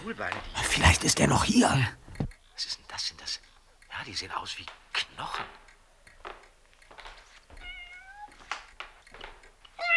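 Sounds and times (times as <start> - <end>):
speech: 0.0 - 3.4, 4.0 - 5.6
cat meowing: 7.6 - 8.3, 9.8 - 9.9.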